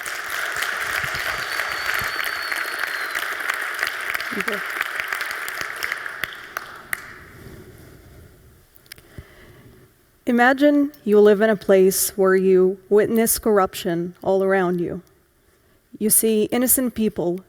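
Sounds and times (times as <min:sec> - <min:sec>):
large audience applause: 0:00.0 - 0:07.4
speech: 0:04.4 - 0:04.8, 0:10.3 - 0:15.1, 0:16.0 - 0:17.4.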